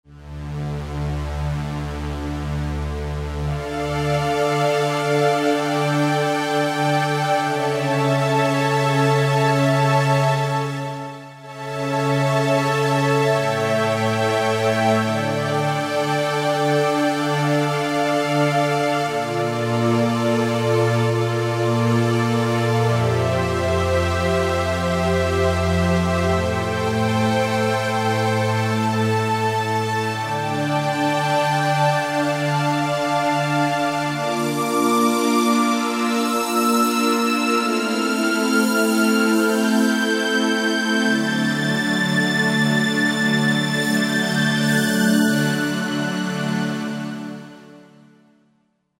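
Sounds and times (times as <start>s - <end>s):
vintage synth strings: 0.1s - 48.0s.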